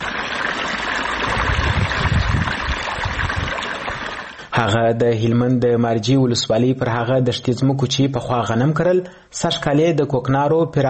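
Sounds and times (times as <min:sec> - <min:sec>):
water flowing while irrigating freshly planted poppy fields: 0:00.0 - 0:04.8
speech: 0:04.6 - 0:10.8.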